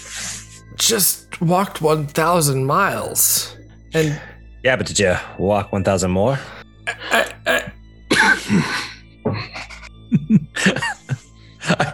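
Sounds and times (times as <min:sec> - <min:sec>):
speech: 0:00.8 - 0:07.0
throat clearing: 0:06.9 - 0:08.7
harsh coughs: 0:06.9 - 0:09.8, 0:10.6 - 0:11.0.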